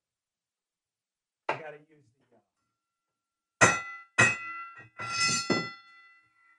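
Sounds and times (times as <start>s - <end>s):
speech: 1.7s - 2.6s
single bell struck with metallic clang: 3.6s - 6.5s.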